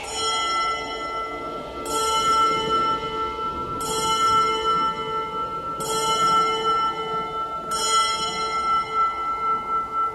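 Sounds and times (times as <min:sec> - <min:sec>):
convent church bell tolling: 0:00.0 - 0:10.1.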